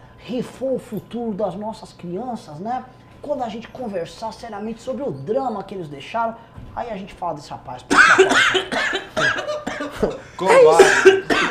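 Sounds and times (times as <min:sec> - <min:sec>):
speech: 0:00.3 - 0:11.4
person coughing: 0:07.9 - 0:11.4.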